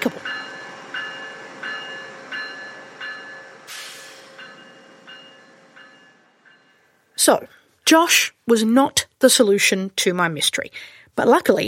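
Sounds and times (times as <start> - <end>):
train at a station rumbling hum: 0.0 - 7.8
loud burst of hissing air: 3.7 - 4.4
speech: 7.2 - 11.6.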